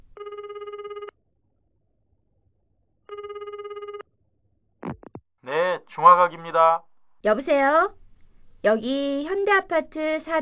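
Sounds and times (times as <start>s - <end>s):
telephone bell ringing in an apartment: 0.2s - 1.1s, 3.1s - 4.0s
speech: 5.9s - 8.0s, 8.6s - 10.4s.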